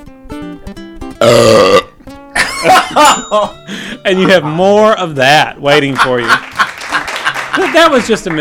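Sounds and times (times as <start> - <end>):
speech: 1.2 - 1.8, 2.6 - 6.5, 7.6 - 8.4
person burping loudly: 1.2 - 3.0
laughter: 2.4 - 3.5, 4.1 - 4.9, 5.7 - 8.4.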